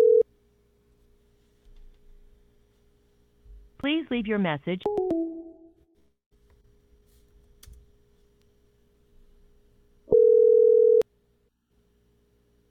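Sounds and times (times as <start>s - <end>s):
telephone dial tone after hanging up to dial back: 0.0s - 0.2s, 10.1s - 11.0s
speech: 3.8s - 5.1s.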